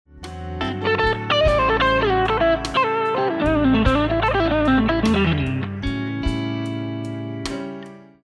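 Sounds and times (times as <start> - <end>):
blues guitar lick: 0.5 - 6.9.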